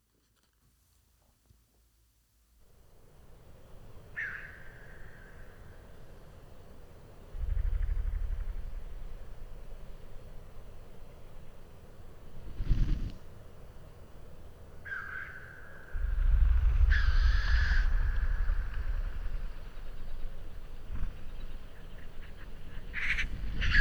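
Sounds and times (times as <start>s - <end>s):
low rumble: 7.3s - 10.9s, 15.9s - 23.7s
lekking Black Grouse hissing blows in Sweden: 16.0s - 23.7s.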